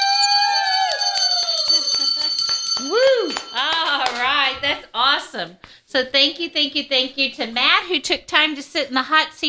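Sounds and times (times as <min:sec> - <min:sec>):
hand bell rung rapidly by a guest: 0:00.0 - 0:04.1
speech: 0:04.5 - 0:09.4.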